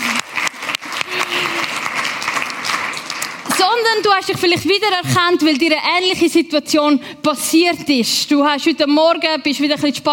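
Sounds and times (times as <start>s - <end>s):
audience clapping: 0.0s - 5.1s
speech: 3.8s - 10.1s.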